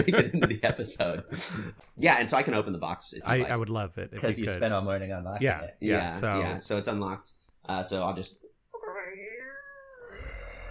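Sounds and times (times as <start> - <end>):
laughter: 0.0 - 1.8
speech: 0.0 - 8.4
cat meowing inside a box: 8.8 - 10.1.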